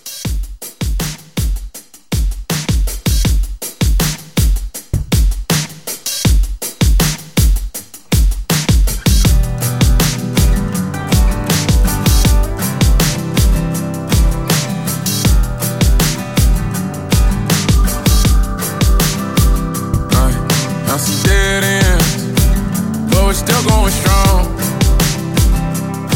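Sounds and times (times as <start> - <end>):
clean country drum: 0.0 - 26.1.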